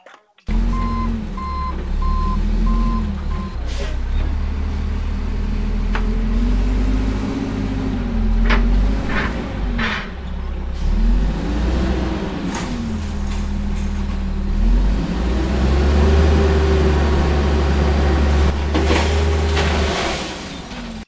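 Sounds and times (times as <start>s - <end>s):
large truck engine rumbling and idling: 0.0s - 21.0s
truck reversing beeps: 0.7s - 3.6s.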